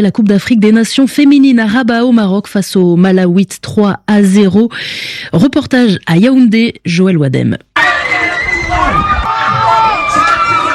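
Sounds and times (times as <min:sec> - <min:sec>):
speech: 0:00.0 - 0:07.7
excited whoops and cries of a celebrating crowd: 0:07.8 - 0:10.7
street crowd cheering and shouting with joy at a football final whistle: 0:07.8 - 0:10.7.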